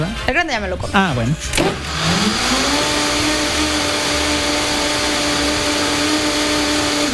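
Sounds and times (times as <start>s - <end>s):
speech: 0.0s - 2.9s
blender whirring while blending cream into a mixture: 1.5s - 7.1s.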